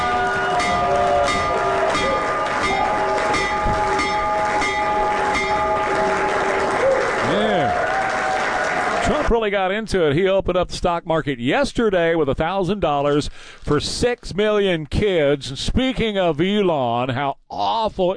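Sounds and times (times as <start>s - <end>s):
bell ringing: 0.0s - 6.6s
crowd applauding and cheering: 0.0s - 9.4s
speech: 9.4s - 18.1s.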